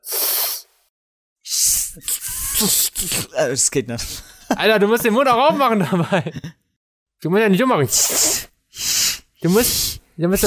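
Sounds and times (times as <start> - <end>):
person hissing with tongue tip against lower front teeth as pronunciation practice: 0.0 - 0.7, 1.4 - 3.3, 7.9 - 10.4
speech: 2.0 - 6.6, 7.2 - 8.3, 9.4 - 10.4
laughter: 3.9 - 6.6.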